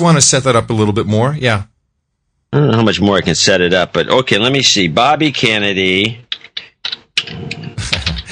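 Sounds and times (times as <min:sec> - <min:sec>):
speech: 0:00.0 - 0:01.7, 0:02.5 - 0:06.2
typing on a computer keyboard: 0:06.2 - 0:08.3.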